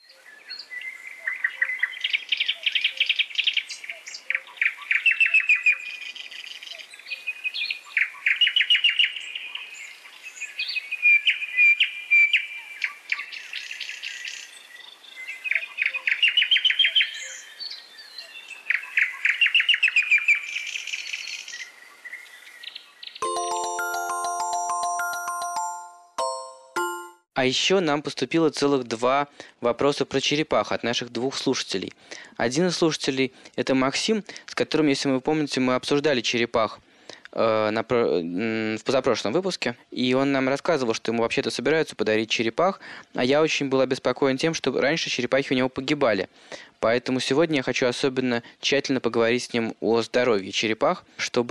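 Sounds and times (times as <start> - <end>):
nightingale singing: 0.0 - 24.1
short bright chime: 23.2 - 27.3
speech: 27.4 - 36.8, 37.4 - 51.4.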